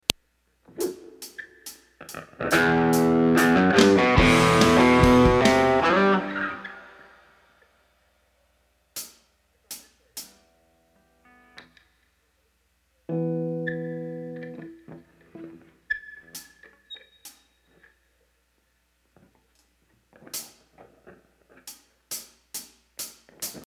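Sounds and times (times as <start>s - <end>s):
ambient guitar music: 2.4s - 7.0s, 13.1s - 15.7s.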